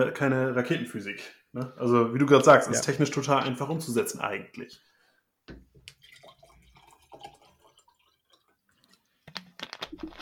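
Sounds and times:
speech: 0.0s - 4.9s
still water pouring into a glass: 5.9s - 8.9s.

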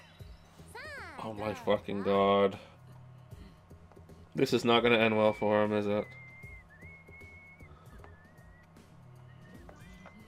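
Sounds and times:
speech: 1.2s - 2.7s, 4.4s - 6.2s
person whistling: 5.3s - 10.2s.

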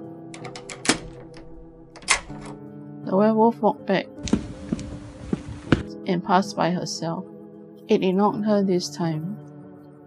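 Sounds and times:
heavy metal jail door clanging shut: 0.3s - 2.6s
keys locking a jail door: 0.3s - 2.6s
speech: 3.1s - 4.2s, 6.1s - 7.3s, 7.9s - 9.4s.

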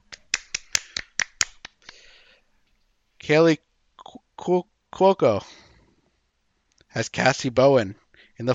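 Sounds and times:
hand claps: 0.0s - 2.0s
speech: 3.2s - 3.7s, 4.4s - 5.6s, 7.0s - 8.5s.

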